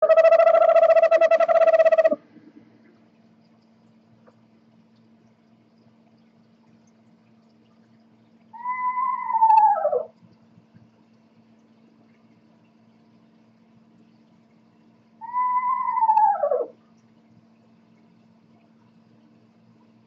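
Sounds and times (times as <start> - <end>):
eastern screech owl tremulous monotone trill: 0.0 - 2.2, 8.6 - 10.1, 15.2 - 16.8.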